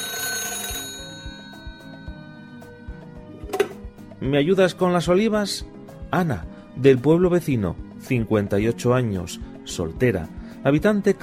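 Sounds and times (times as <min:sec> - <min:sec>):
telephone ringing for an incoming call: 0:00.0 - 0:03.5
speech: 0:04.2 - 0:11.2.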